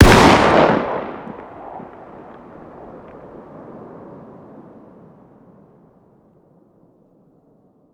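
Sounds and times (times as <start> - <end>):
distant fire: 0.0 - 6.1.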